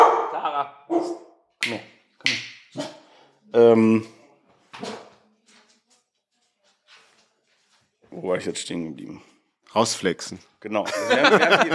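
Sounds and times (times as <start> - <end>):
dogs barking: 0.0 - 1.3, 2.7 - 3.1
laughter: 0.1 - 0.9, 10.8 - 11.7
speech: 0.4 - 2.4, 3.5 - 4.2, 8.2 - 11.7.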